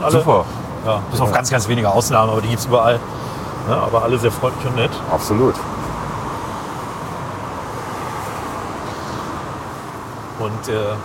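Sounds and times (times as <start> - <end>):
speech: 0.0 - 5.8, 10.4 - 11.0
street road traffic rumbling: 0.0 - 11.0.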